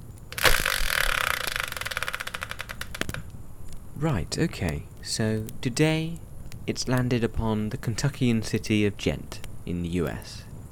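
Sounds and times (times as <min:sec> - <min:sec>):
game-show style prize wheel spinning and clicking: 0:00.4 - 0:03.0
speech: 0:04.0 - 0:10.4.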